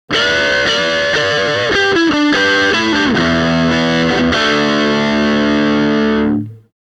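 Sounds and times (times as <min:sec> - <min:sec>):
blues music: 0:00.1 - 0:06.7.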